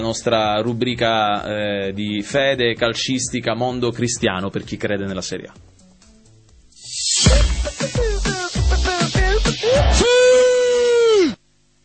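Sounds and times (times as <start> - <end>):
speech: 0.0 - 5.8, 7.2 - 8.1
person imitating a footballer's celebratory goal scream: 8.9 - 11.4
person shouting short rhythmic bursts: 9.3 - 11.4.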